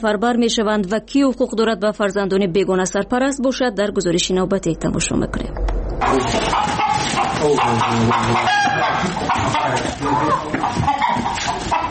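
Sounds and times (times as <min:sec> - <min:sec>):
speech: 0:00.0 - 0:06.8, 0:07.4 - 0:11.2
steady noise: 0:00.0 - 0:11.8
chickens clucking in a farmyard: 0:06.0 - 0:11.8
rooster crowing: 0:06.0 - 0:11.8.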